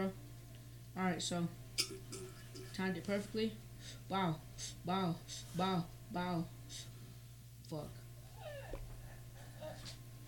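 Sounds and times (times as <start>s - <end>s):
speech: 0.0s - 0.2s, 1.0s - 6.9s, 7.7s - 8.6s
steady low hum: 0.0s - 10.2s
dog whimpering: 8.3s - 9.9s.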